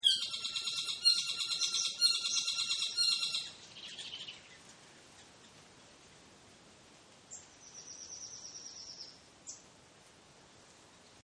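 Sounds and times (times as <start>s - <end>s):
New Zealand bird chirping: 0.0s - 5.4s, 7.3s - 9.7s
faint background hiss: 0.0s - 11.2s.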